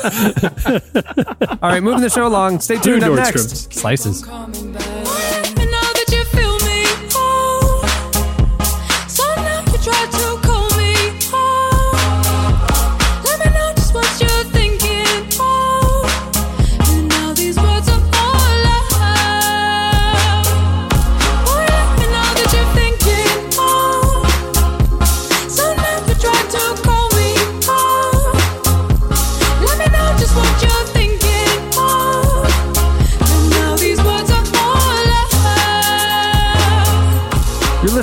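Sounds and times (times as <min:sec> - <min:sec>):
laughter: 0:00.0 - 0:03.8
speech: 0:00.0 - 0:04.9
electronic pop song with punchy beat and synth chords: 0:00.0 - 0:38.0.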